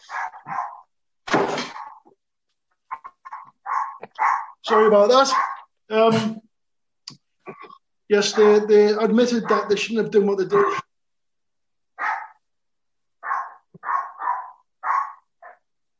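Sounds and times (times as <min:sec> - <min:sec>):
Jack Russell terrier barking: 0:00.0 - 0:00.9, 0:02.9 - 0:04.6, 0:05.2 - 0:05.7, 0:08.3 - 0:08.8, 0:09.4 - 0:09.8, 0:12.0 - 0:12.4, 0:13.2 - 0:15.7
speech: 0:04.7 - 0:06.4, 0:08.1 - 0:10.8.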